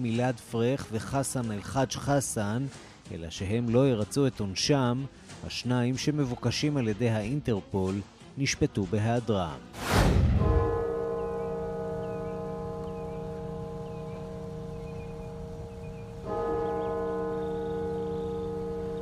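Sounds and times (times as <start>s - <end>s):
speech: 0.0s - 10.3s
large deep cathedral bell tolling in Washington: 10.2s - 19.0s
faint birdsong: 11.0s - 19.0s.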